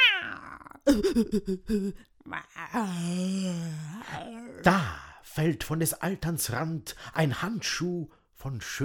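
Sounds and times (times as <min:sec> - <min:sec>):
cats yowling and growling: 0:00.0 - 0:00.8
speech: 0:00.8 - 0:08.8.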